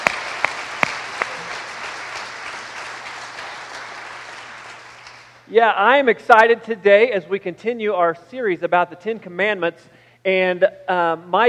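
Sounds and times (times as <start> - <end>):
church congregation applauding: 0.0 - 5.4
sharp loud claps: 0.0 - 5.5
speech: 5.5 - 11.4.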